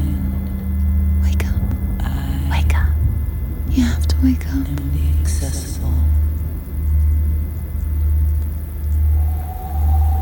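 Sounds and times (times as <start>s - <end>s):
deep stormy thunder rumble: 0.3s - 10.2s
faint thin tone: 9.1s - 10.2s.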